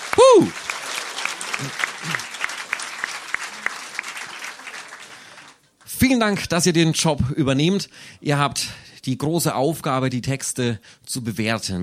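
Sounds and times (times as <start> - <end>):
audience applause for the jury: 0.0 - 5.8
speech: 0.2 - 0.6, 6.1 - 11.8.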